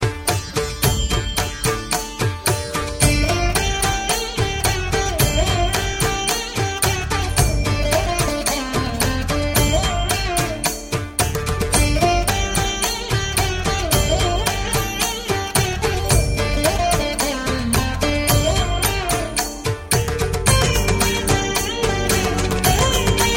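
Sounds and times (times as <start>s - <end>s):
Arabic dance tone: 0.0s - 23.3s.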